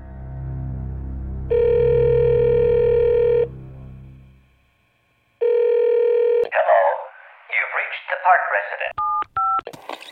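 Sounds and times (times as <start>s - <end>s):
phone line humming with a steady tone: 1.5s - 3.5s, 5.4s - 6.5s
garbled voice: 6.5s - 9.0s.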